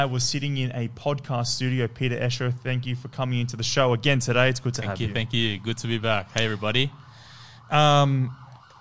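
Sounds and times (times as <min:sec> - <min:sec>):
speech: 0:00.0 - 0:07.0, 0:07.7 - 0:08.4
short emergency vehicle siren blast: 0:05.3 - 0:08.7.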